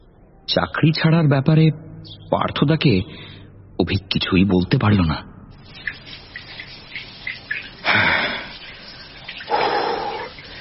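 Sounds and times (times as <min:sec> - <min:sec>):
speech: 0:00.5 - 0:05.3
water running and splashing while someone bathes: 0:05.6 - 0:10.5.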